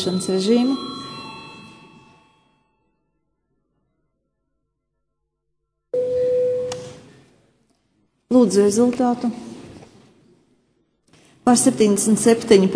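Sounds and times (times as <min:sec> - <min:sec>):
speech: 0:00.0 - 0:00.9, 0:08.4 - 0:09.5, 0:11.4 - 0:12.7
bell ringing in a parliament chamber to call a vote: 0:00.0 - 0:03.0.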